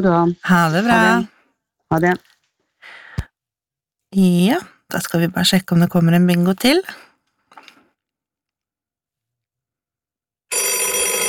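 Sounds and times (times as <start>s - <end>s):
speech: 0.0s - 1.3s, 1.9s - 2.3s, 4.1s - 7.1s
telephone in a bingo studio ringing metallically: 10.5s - 11.2s.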